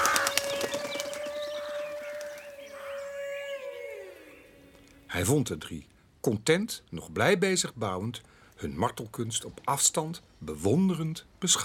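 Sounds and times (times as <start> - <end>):
raven flying off with wings flapping: 0.0 - 2.9
faint bird calls: 0.0 - 5.1
speech: 5.1 - 11.6.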